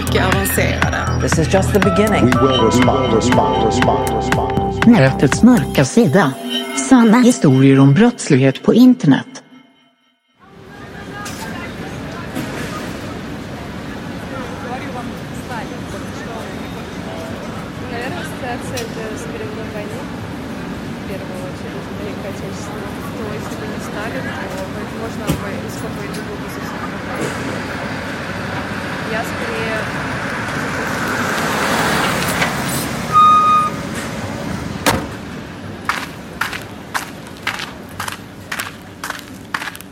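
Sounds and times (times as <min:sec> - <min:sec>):
heavy street traffic in Saint Petersburg, Russia: 0:00.0 - 0:06.4, 0:10.4 - 0:39.9
speech: 0:00.2 - 0:09.4
tone: 0:01.8 - 0:10.1, 0:33.1 - 0:33.8
large vehicle passing: 0:27.1 - 0:34.8.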